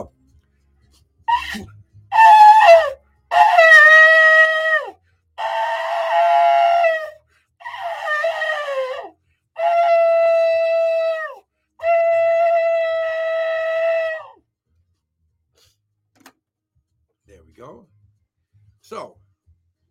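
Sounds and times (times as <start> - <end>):
shofar blasts: 1.3 - 14.4.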